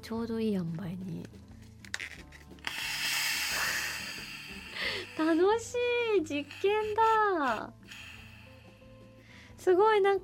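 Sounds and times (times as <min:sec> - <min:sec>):
speech: 0:00.0 - 0:01.5, 0:05.2 - 0:07.8, 0:09.6 - 0:10.2
pressurized gas venting from a carbonated drink: 0:02.5 - 0:09.6.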